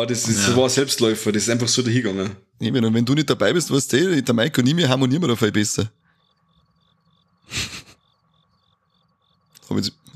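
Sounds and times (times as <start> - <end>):
speech: 0.0 - 6.0, 7.5 - 7.8, 9.7 - 10.1
cricket chirping: 0.0 - 10.1
short loud breathy burst of noise: 7.5 - 8.0.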